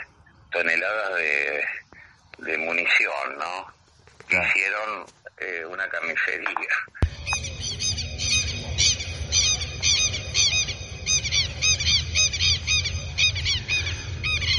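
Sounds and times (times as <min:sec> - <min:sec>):
speech: 0:00.6 - 0:07.4
low rumble: 0:07.0 - 0:14.5
southern lapwings calling: 0:07.0 - 0:14.5.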